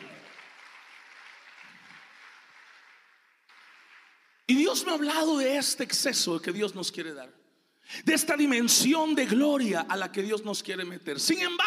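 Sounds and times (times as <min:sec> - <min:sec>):
audience applauding: 0:00.0 - 0:04.5
speech: 0:04.5 - 0:11.6.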